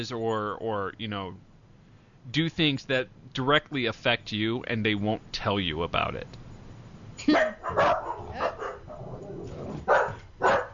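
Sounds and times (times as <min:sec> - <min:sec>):
speech: 0:00.0 - 0:01.5, 0:02.2 - 0:06.4
terrier barking: 0:07.3 - 0:09.0, 0:09.8 - 0:10.7.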